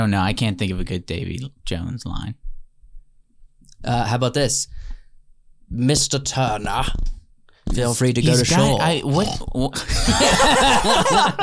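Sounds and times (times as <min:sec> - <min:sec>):
speech: 0:00.0 - 0:02.4, 0:03.8 - 0:05.0, 0:05.7 - 0:11.4
person making throaty pig-like snorts and grunts: 0:08.3 - 0:09.5
laughter: 0:09.8 - 0:11.4.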